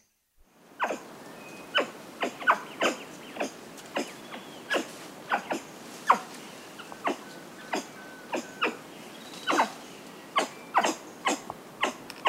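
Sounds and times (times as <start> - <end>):
brown capuchin giving sharp clipped bark-like calls: 0.8 - 1.1, 1.7 - 8.8, 9.4 - 9.8, 10.4 - 12.2.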